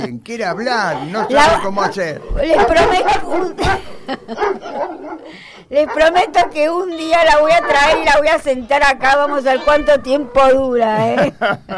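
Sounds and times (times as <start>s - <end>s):
laughter: 0.0s - 6.8s, 10.5s - 11.7s
speech: 0.0s - 11.7s
female dog barking and yipping: 0.6s - 9.8s.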